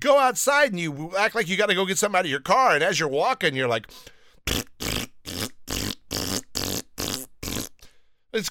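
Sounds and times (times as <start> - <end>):
speech: 0.0 - 4.9, 8.4 - 8.5
farts: 4.5 - 7.8.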